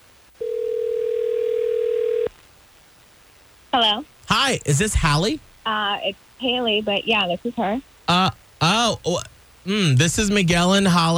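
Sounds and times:
telephone dial tone: 0.4 - 2.3
speech: 3.8 - 11.1.

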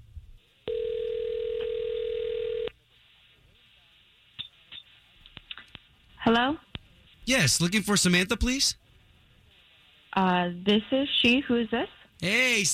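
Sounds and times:
telephone ringback tone: 0.7 - 2.7
speech: 6.3 - 6.7, 7.3 - 8.8, 10.2 - 12.7.

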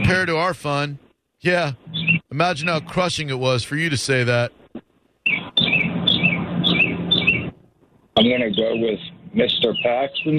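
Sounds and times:
steady noisy background hum: 0.0 - 10.3
speech: 0.1 - 4.6, 8.2 - 10.3
birds chirping: 1.8 - 3.2, 5.2 - 7.6, 8.2 - 10.3.

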